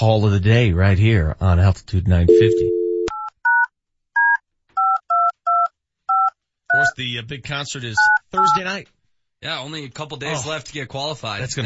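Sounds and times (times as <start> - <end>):
speech: 0.0 - 2.8, 6.8 - 11.6
touch-tone telephone dialing beeps: 2.3 - 7.0, 8.0 - 8.6.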